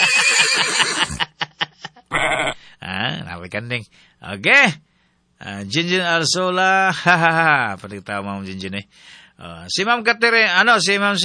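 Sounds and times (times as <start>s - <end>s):
person imitating a horse whinny and snorts: 0.0s - 1.2s, 2.1s - 2.6s
speech: 3.5s - 4.8s, 5.4s - 11.2s.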